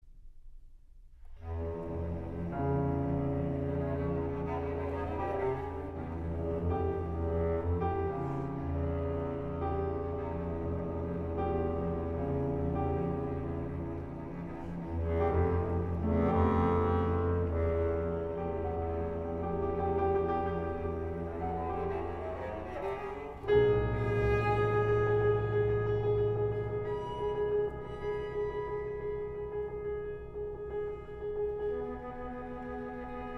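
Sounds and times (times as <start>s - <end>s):
piano: 0.0s - 33.3s
cello: 1.2s - 33.3s
bass clarinet: 1.3s - 33.3s.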